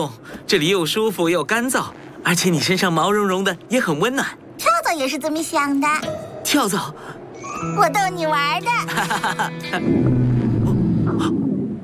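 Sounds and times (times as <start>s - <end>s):
speech: 0.0s - 10.1s
laughter: 8.8s - 9.9s
stomach growling from hunger: 9.9s - 11.8s.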